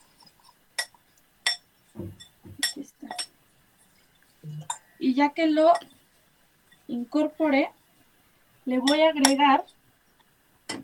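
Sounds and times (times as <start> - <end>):
spoon stirring granola mixture in a bowl: 0.8 - 3.4, 8.8 - 9.8
speech: 5.2 - 5.9, 6.9 - 7.8, 8.7 - 9.8.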